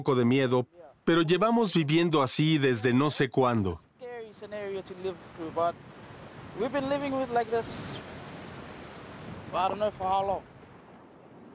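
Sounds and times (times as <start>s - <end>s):
speech: 0.0s - 5.9s, 6.5s - 8.2s, 9.5s - 10.5s
gusting wind along a shoreline: 4.2s - 11.5s
ocean surf roaring along a shoreline: 4.2s - 11.5s.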